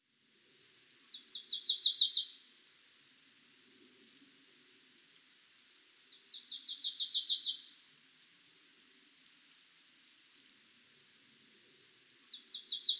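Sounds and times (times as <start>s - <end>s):
marsh tit Poecile palustris calling: 1.1s - 2.4s, 6.3s - 7.8s, 12.3s - 12.9s.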